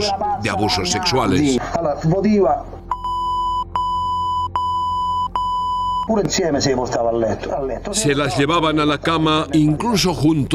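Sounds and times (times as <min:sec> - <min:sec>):
speech: 0:00.0 - 0:02.8, 0:06.1 - 0:10.5
electronic censor bleeps over names: 0:02.9 - 0:06.1.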